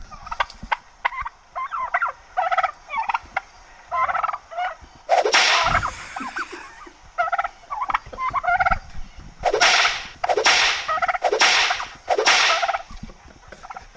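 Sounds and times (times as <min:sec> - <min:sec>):
turkey gobbling and clucking: 0:00.0 - 0:08.8, 0:09.4 - 0:13.9
bullwhip cracking: 0:05.1 - 0:05.9, 0:09.4 - 0:12.9.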